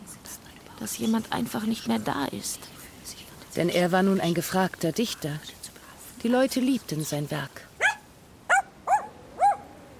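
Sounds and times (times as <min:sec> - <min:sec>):
speech: 0:00.8 - 0:02.8, 0:03.6 - 0:05.6, 0:06.2 - 0:07.7
small dog barking: 0:07.8 - 0:09.8.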